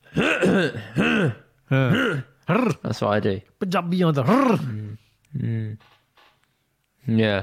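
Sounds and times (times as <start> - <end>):
man clearing his throat: 0.0 - 2.9, 4.2 - 5.8
speech: 0.5 - 6.0, 7.0 - 7.4.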